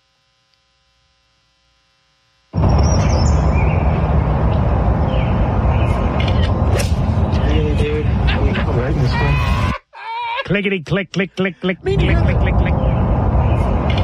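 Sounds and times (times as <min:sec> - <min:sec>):
dense steady noise: 0:02.5 - 0:14.0
loud chirping birds outdoors: 0:02.6 - 0:09.7, 0:11.9 - 0:14.0
laughter: 0:07.7 - 0:12.8
speech: 0:10.5 - 0:12.8.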